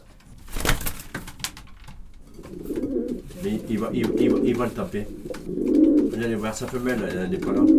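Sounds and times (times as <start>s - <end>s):
clicks and rustles from pigeons moving around: 0.0s - 7.7s
pigeons cooing: 2.3s - 7.7s
speech: 3.4s - 7.7s.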